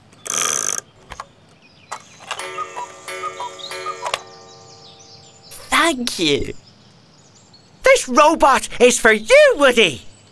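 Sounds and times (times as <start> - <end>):
clock ticking: 1.9 - 6.5
bright tinkling chime-like melody: 2.2 - 6.0
speech: 5.9 - 6.6, 8.1 - 10.1.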